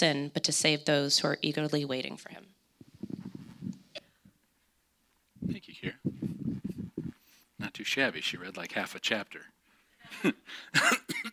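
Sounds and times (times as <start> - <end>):
speech: 0.0 - 2.6, 5.4 - 6.9, 7.6 - 11.3
raspy coughs: 10.1 - 11.3.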